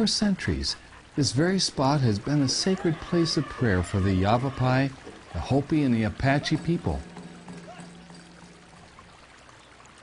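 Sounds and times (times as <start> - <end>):
speech: 0.0 - 7.1
creek water flowing at Red Rock Crossing near Sedona Arizona: 0.0 - 10.0.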